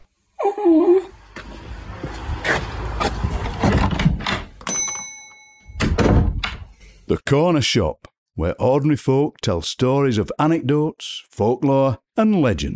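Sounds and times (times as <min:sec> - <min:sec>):
dog whimpering: 0:00.4 - 0:01.1
knocks and scuffs: 0:01.3 - 0:03.8
door banging shut with heavy thuds and rattling: 0:03.3 - 0:04.7, 0:05.7 - 0:06.7
speech: 0:07.2 - 0:12.7.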